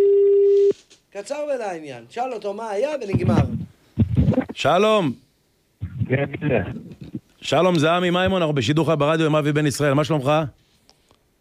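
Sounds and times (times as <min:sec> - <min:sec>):
telephone dial tone while calling a person: 0:00.0 - 0:00.7
speech: 0:01.2 - 0:03.8, 0:04.6 - 0:05.2, 0:06.1 - 0:10.6.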